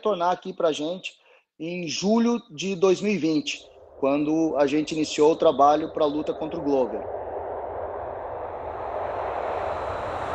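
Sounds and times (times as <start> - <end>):
speech: 0.0 - 7.2
airplane engine roar as a transition effect: 3.6 - 10.3.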